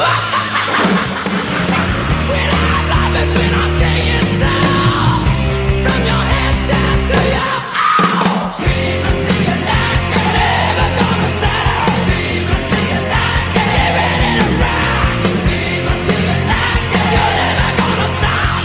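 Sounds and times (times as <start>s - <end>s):
laughter: 0.0s - 5.1s, 9.0s - 18.6s
driving distorted guitars: 0.0s - 18.6s
harsh shouted vocals: 0.0s - 18.6s
heavy metal track: 0.0s - 18.6s
pounding drums: 0.7s - 18.6s.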